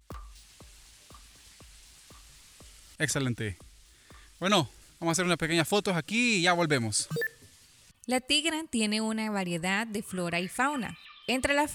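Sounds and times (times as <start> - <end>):
water trickling under a small footbridge: 0.0 - 7.9
speech: 3.0 - 3.6, 4.4 - 7.3, 8.1 - 11.7.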